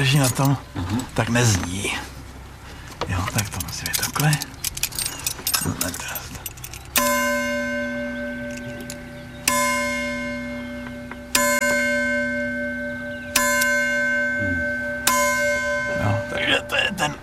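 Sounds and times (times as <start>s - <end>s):
speech: 0.0s - 2.0s, 3.1s - 4.5s, 5.6s - 6.2s
faint handling noises: 0.0s - 7.0s
bell being struck and ringing: 7.0s - 17.2s.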